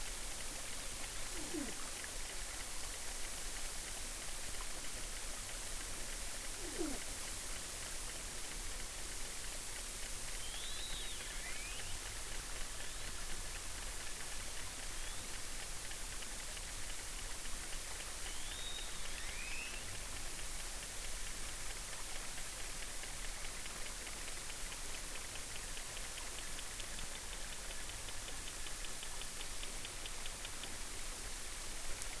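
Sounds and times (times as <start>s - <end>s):
Lagenodelphis hosei clicks: 0.2s - 32.1s.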